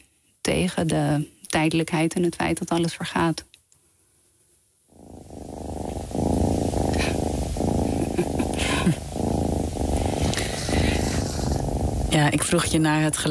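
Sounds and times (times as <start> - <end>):
speech: 0.5 - 3.5, 12.1 - 13.2
cat purring: 4.9 - 13.2.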